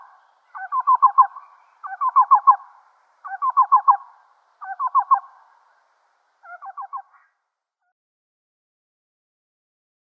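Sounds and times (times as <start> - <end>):
Black-billed cuckoo display calling with hollow rapid cu notes: 0.0 - 5.6, 6.4 - 7.3.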